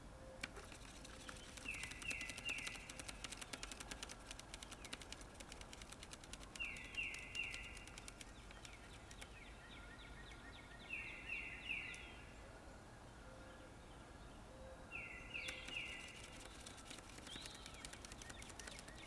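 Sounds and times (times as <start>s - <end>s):
fainter lower bird calls in a forest: 0.1s - 19.0s
scattered dry ticking and clicks: 0.4s - 9.4s, 15.4s - 19.0s.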